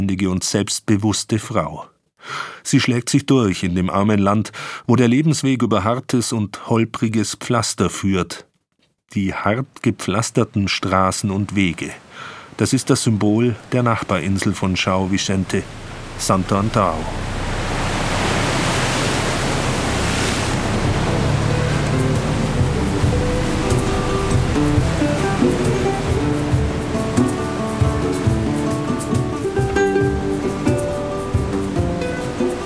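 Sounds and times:
speech: 0:00.0 - 0:08.5, 0:09.1 - 0:17.4
waves splashing against a ferry's bow: 0:13.6 - 0:32.6
rhythmic music: 0:20.6 - 0:32.6.

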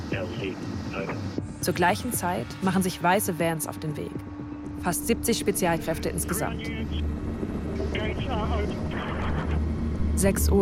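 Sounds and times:
indistinct voices: 0:00.0 - 0:02.8, 0:05.5 - 0:07.1, 0:07.7 - 0:09.6
deep rotor drone of helicopters taking off: 0:00.0 - 0:10.5
speech: 0:00.1 - 0:09.2, 0:10.2 - 0:10.5.

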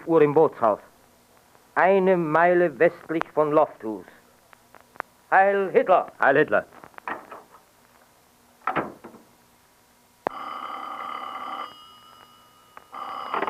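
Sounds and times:
speech: 0:00.0 - 0:00.9, 0:01.8 - 0:04.2, 0:05.3 - 0:06.8
old-fashioned telephone bell ringing: 0:10.3 - 0:13.4.

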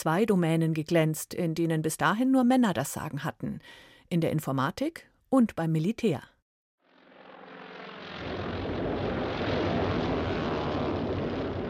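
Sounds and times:
speech: 0:00.0 - 0:06.3
propeller engines of Japanese aircraft droning overhead at Pearl Harbor Hawaii: 0:06.9 - 0:11.6.

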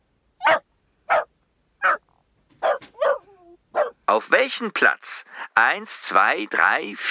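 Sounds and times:
dachshund barking: 0:00.4 - 0:02.0, 0:02.6 - 0:04.0
speech: 0:04.2 - 0:07.0.

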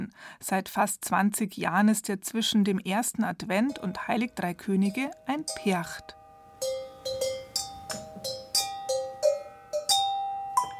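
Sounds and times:
speech: 0:00.2 - 0:06.8
wheeled glockenspiel bells playing a melody: 0:03.7 - 0:10.7.

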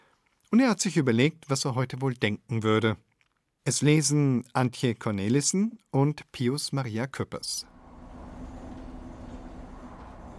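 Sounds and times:
speech: 0:00.5 - 0:07.7
train rolling along the rails: 0:07.7 - 0:10.3.

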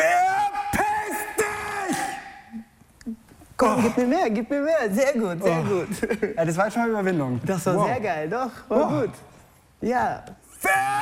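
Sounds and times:
man yelling angrily and hoarsely during an acting exercise: 0:00.0 - 0:02.5, 0:10.5 - 0:11.0
speech: 0:03.6 - 0:11.0.

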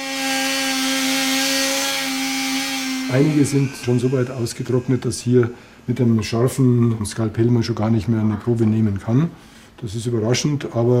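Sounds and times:
powered saw cutting through dried mummy tissue: 0:00.0 - 0:05.8
speech: 0:03.1 - 0:10.9.

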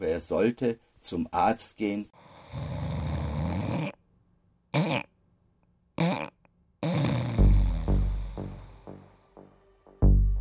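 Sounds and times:
speech: 0:00.0 - 0:03.0
person snoring: 0:02.2 - 0:04.0, 0:06.0 - 0:09.0.

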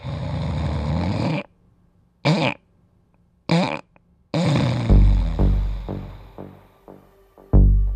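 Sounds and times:
person snoring: 0:00.0 - 0:01.5, 0:03.5 - 0:06.9.

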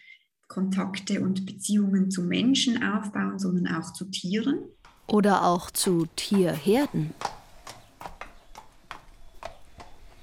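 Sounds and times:
speech: 0:00.5 - 0:07.4
horse hooves clip-clopping on a fenced farm meadow: 0:04.8 - 0:10.2.

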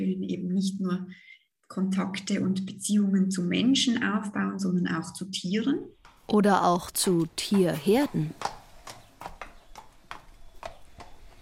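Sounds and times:
speech: 0:00.3 - 0:08.6
horse hoof clops at a small farm: 0:06.0 - 0:11.4.

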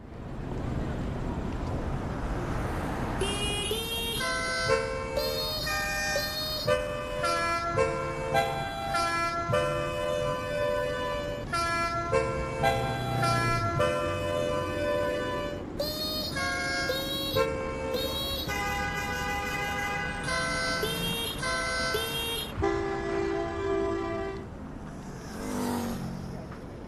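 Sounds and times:
steady traffic rumble: 0:00.0 - 0:26.8
many car horns honking a melody in traffic: 0:03.2 - 0:24.5.

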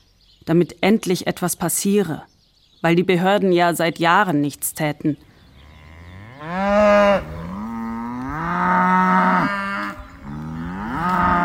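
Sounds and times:
speech: 0:00.4 - 0:05.3, 0:06.4 - 0:07.4
neglected cattle mooing on a pasture by empty water troughs: 0:05.5 - 0:11.4.

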